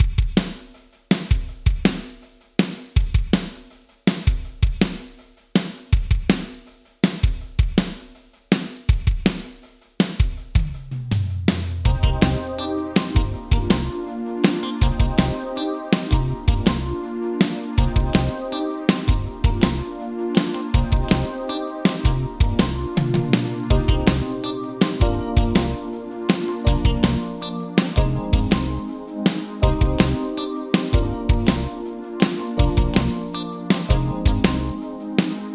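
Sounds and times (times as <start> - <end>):
drums: 0.0 - 35.5
guitar: 11.9 - 35.5.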